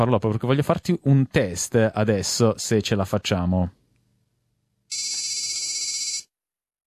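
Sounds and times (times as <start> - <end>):
speech: 0.0 - 3.8
old mobile phone ringtone: 4.9 - 6.3.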